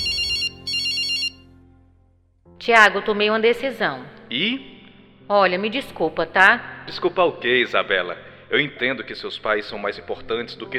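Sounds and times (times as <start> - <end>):
electronic telephone ringtone during a call: 0.0 - 1.4
speech: 2.6 - 4.7, 5.3 - 10.7.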